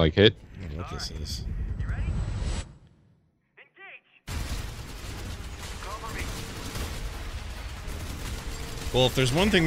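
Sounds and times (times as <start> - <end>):
speech: 0.0 - 1.6, 8.9 - 9.6
gunfire in a VR first-person shooter video game: 4.3 - 9.6.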